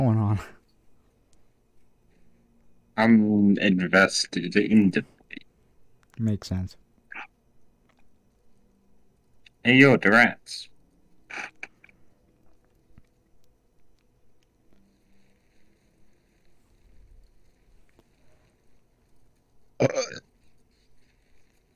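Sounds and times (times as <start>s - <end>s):
speech: 0.0s - 0.6s, 3.0s - 5.1s, 6.2s - 6.8s, 9.6s - 10.7s, 11.3s - 11.5s, 19.8s - 20.2s
loud burp: 19.8s - 20.2s.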